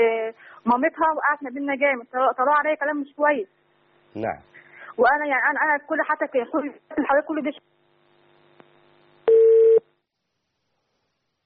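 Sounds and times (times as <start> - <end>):
speech: 0.0 - 7.7
single steady telephone tone signalling an incoming call: 9.3 - 9.9.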